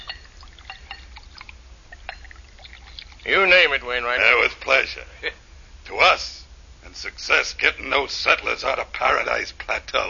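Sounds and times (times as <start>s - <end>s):
drink being poured into a glass for a toast: 0.0s - 3.3s
speech: 3.2s - 10.0s.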